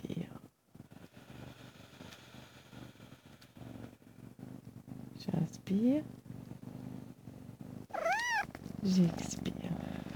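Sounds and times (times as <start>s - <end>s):
cat purring while stretching: 0.0s - 10.1s
speech: 5.2s - 6.2s, 8.8s - 9.6s
cat drawn-out rising-and-falling squeaky vocal sound while stretching: 7.9s - 8.5s.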